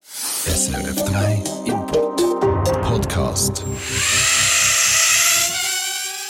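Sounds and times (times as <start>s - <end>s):
small drone buzzing: 0.0s - 0.5s, 3.8s - 6.2s
speech: 0.4s - 2.0s, 2.9s - 4.3s.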